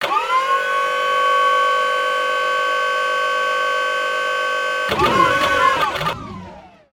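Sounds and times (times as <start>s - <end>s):
forklift: 0.0s - 6.8s.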